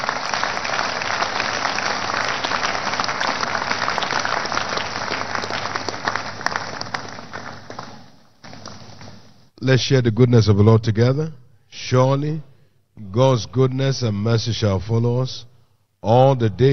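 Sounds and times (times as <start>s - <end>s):
audience clapping during worship: 0.0s - 9.5s
speech: 9.6s - 12.5s, 13.1s - 16.7s.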